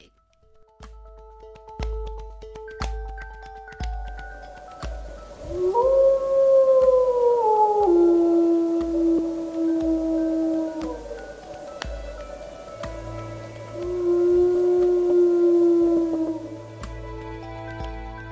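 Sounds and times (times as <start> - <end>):
wolf howling: 5.3 - 16.8.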